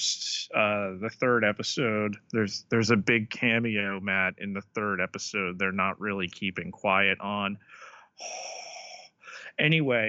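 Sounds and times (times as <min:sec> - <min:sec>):
speech: 0:00.0 - 0:08.4, 0:09.6 - 0:10.0
heavy raspy wheezing breathing: 0:07.6 - 0:09.6.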